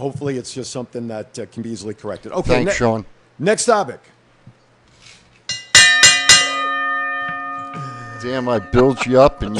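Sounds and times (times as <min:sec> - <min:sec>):
speech: 0:00.0 - 0:04.2, 0:08.2 - 0:09.5
bell struck with metallic clangs: 0:05.5 - 0:09.5.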